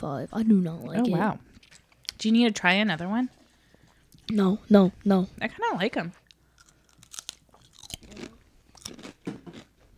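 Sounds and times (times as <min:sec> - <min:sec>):
speech: 0:00.0 - 0:03.4, 0:04.3 - 0:06.2
cheese-flavored potato chip being bitten and chewed: 0:06.6 - 0:09.7.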